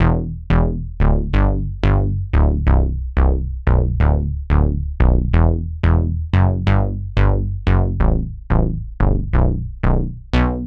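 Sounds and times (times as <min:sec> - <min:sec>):
synth bass in E minor: 0:00.0 - 0:10.6.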